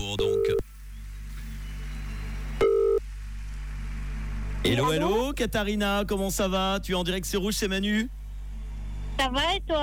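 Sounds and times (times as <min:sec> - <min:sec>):
low constant hum: 0:00.0 - 0:09.8
outgoing telephone call ringing tone: 0:02.6 - 0:03.0
speech: 0:04.6 - 0:08.2, 0:09.2 - 0:09.8.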